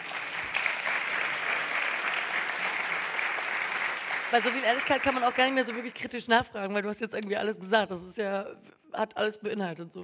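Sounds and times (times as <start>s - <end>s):
room full of people applauding: 0.0s - 6.0s
speech: 4.3s - 10.0s.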